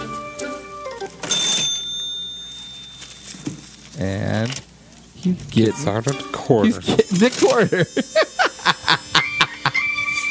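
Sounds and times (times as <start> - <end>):
cash register ringing with a sharp bright ding: 1.2 - 3.7, 5.6 - 9.0
speech: 4.0 - 8.3
laughter: 6.8 - 10.0.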